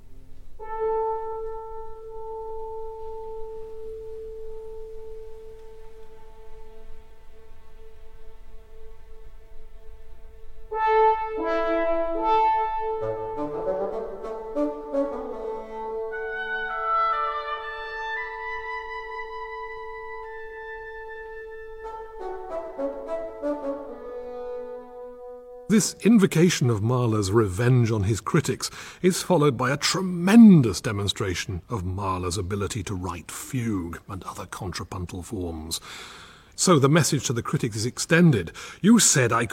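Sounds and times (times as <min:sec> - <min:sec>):
orchestral symphony passage with strings and woodwinds: 0:00.0 - 0:27.5
speech: 0:25.8 - 0:39.5.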